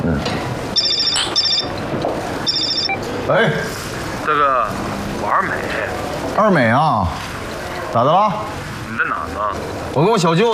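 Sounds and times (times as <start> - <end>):
room noise: 0.0 - 10.5
telephone ringing in short high-pitched electronic bursts: 0.7 - 3.0
murmur of voices: 2.2 - 10.5
speech: 3.3 - 7.3, 7.9 - 10.5.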